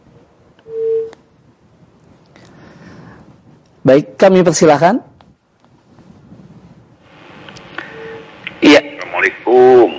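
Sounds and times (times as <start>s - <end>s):
telephone line tone: 0.6s - 1.2s, 7.8s - 8.3s
speech: 3.8s - 5.1s
faint hissy telephone line noise: 7.0s - 9.9s.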